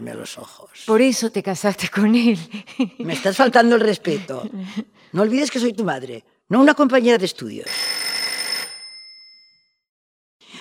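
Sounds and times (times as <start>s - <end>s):
speech: 0.0s - 8.1s
telephone bell ringing with a metallic rattle: 7.7s - 9.8s.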